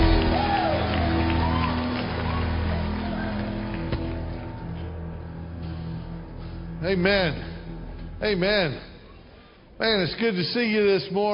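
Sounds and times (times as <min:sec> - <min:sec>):
large crowd clapping in a reverberant room: 0:00.0 - 0:05.3
speech: 0:06.8 - 0:07.5, 0:08.2 - 0:08.9, 0:09.8 - 0:11.3.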